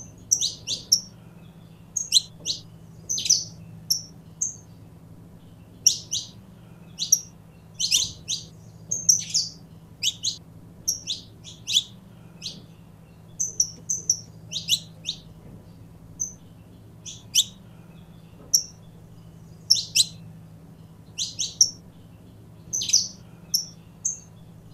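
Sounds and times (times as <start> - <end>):
purebred Belgian canary singing chirps and whistled notes: 0.0 - 1.2, 1.9 - 4.7, 5.8 - 12.7, 13.3 - 15.4, 16.2 - 17.6, 18.4 - 20.2, 21.1 - 21.8, 22.7 - 24.7.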